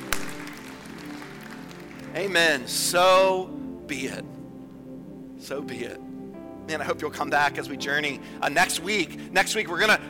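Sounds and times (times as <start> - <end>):
crowd clapping after a prayer: 0.0 - 2.2
speech: 2.2 - 4.4, 5.4 - 6.0, 6.7 - 10.0.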